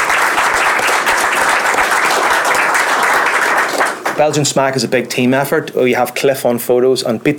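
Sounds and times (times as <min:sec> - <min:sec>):
sizable crowd applauding: 0:00.0 - 0:04.4
speech: 0:04.2 - 0:07.3.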